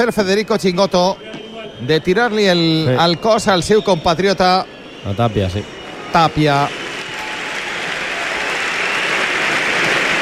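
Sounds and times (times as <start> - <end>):
speech: 0.0 - 6.8
large crowd applauding at a padel tournament final: 3.2 - 10.2.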